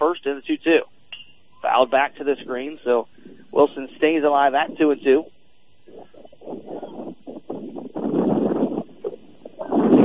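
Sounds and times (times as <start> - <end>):
speech: 0.0 - 0.9, 1.7 - 6.7
low rumbling wind gusts buffeting a close microphone: 2.4 - 10.0.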